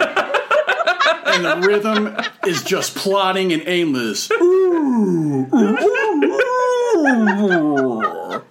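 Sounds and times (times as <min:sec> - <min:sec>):
laughter: 0:00.0 - 0:08.4
speech: 0:01.4 - 0:08.2
voice imitating a sick humpback whale with a mournful moan: 0:04.4 - 0:08.4.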